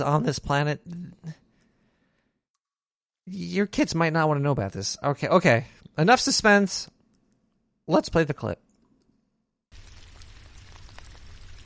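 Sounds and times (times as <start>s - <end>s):
speech: 0.0s - 1.4s, 3.3s - 6.9s, 7.9s - 8.6s
rain-like patter with tiny droplet ticks: 9.7s - 11.6s.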